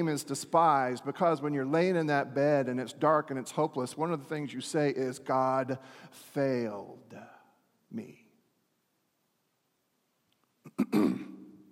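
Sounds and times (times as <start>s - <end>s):
speech: 0.0s - 7.3s, 7.9s - 8.2s, 10.8s - 11.3s
throat clearing: 10.7s - 11.5s.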